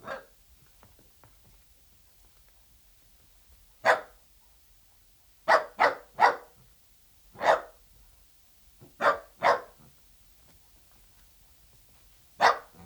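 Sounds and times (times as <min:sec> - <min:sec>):
Dachshund barking sharply: 0:00.0 - 0:00.3, 0:03.8 - 0:04.1, 0:05.5 - 0:06.6, 0:07.4 - 0:07.8, 0:09.0 - 0:09.8, 0:12.4 - 0:12.8.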